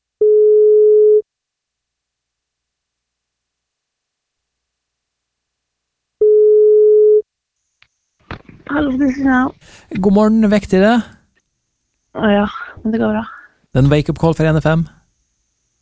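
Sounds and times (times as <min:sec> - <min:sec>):
telephone ringback tone on an outgoing call: 0:00.2 - 0:01.2, 0:06.2 - 0:07.2
speech: 0:08.8 - 0:11.2, 0:12.2 - 0:15.0.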